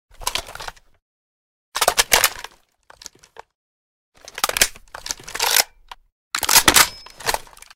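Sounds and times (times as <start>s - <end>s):
assault rifle being inspected: 4.2s - 7.7s.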